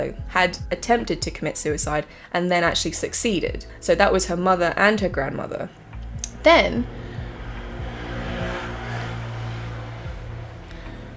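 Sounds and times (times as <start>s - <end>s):
speech: 0.0s - 5.8s, 6.4s - 7.0s
motorbike driving past outside an open window: 4.4s - 11.1s.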